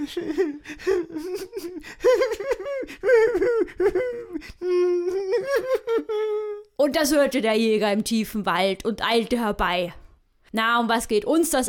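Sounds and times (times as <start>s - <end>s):
speech: 0.0s - 5.8s, 6.8s - 11.6s
voice imitating a girl wailing and sobbing: 0.0s - 6.8s.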